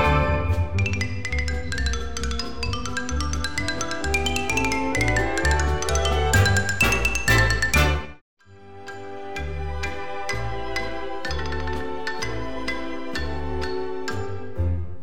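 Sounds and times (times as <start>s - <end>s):
rosewood xylophone solo: 0.2s - 8.1s, 8.8s - 14.6s.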